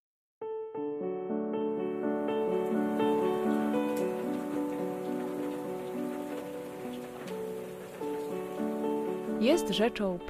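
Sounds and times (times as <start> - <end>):
soft sustained melody of tones: 0.6 - 10.2
steady heavy rain hissing: 2.2 - 10.0
speech: 9.4 - 10.2.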